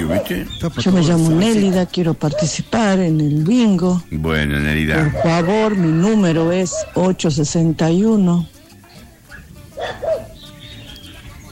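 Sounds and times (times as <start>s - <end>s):
dog barking: 0.0s - 2.8s, 5.0s - 7.2s, 9.3s - 10.4s
speech: 0.1s - 8.5s.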